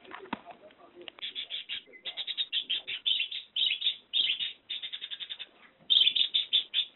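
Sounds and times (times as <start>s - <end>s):
budgerigar chattering: 1.2s - 6.9s.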